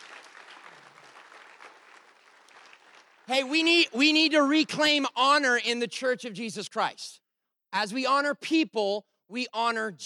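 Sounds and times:
crowd applauding: 0.0s - 3.9s
speech: 3.3s - 10.0s.

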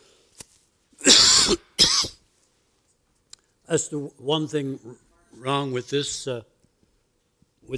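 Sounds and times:
harsh coughs amplified through a sound system: 1.0s - 2.2s
speech: 3.7s - 6.5s.

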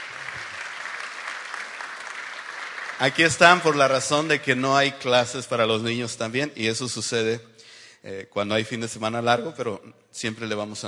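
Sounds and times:
church audience clapping for the children: 0.0s - 4.9s
speech: 3.0s - 10.8s.

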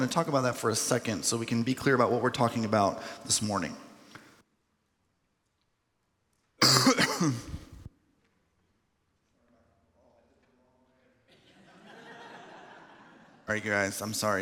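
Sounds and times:
speech: 0.0s - 3.9s, 7.2s - 7.6s, 13.5s - 14.4s
harsh cough: 6.6s - 7.8s
laughter: 11.3s - 13.8s.

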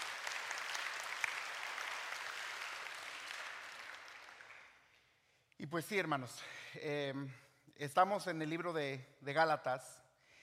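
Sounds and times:
audience applauding warmly: 0.0s - 4.9s
speech: 5.6s - 10.0s.

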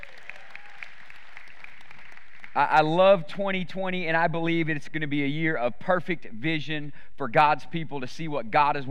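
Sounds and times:
congregation clapping hands: 0.0s - 3.0s
speech: 2.6s - 8.9s.

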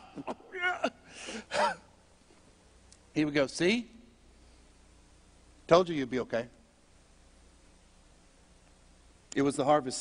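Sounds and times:
speech: 0.2s - 0.4s, 3.2s - 4.0s, 5.7s - 6.6s, 9.4s - 9.9s
person imitating gasping for air: 1.0s - 1.8s.

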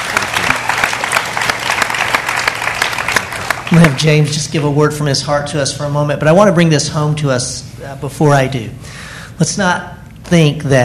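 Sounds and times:
roomful of people applauding: 0.0s - 4.0s
speech: 3.7s - 10.8s.

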